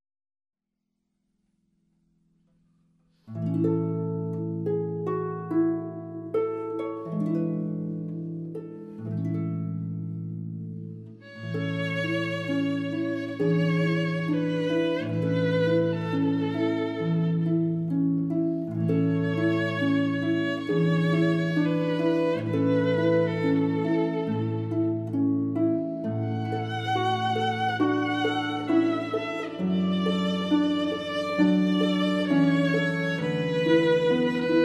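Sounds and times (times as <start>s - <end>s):
harp: 3.1s - 34.6s
violin: 11.1s - 34.6s.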